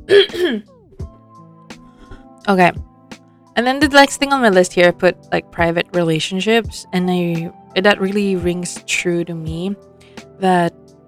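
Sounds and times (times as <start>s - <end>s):
harsh throaty coughs: 0.1s - 0.7s
speech: 0.1s - 0.8s, 2.4s - 2.9s, 3.6s - 10.8s.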